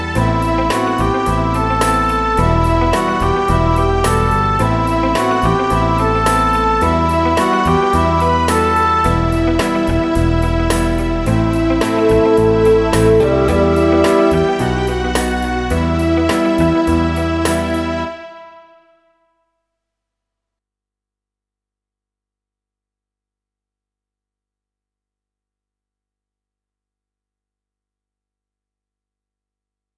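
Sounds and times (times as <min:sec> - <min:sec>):
English horn riff in a pop ballad: 0:00.2 - 0:19.2.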